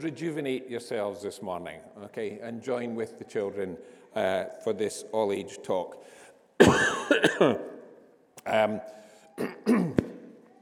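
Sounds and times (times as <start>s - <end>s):
speech: 0.0s - 7.7s, 8.4s - 9.8s
person clearing throat: 6.6s - 7.7s, 9.4s - 10.1s
person coughing: 6.6s - 7.7s, 9.4s - 10.0s.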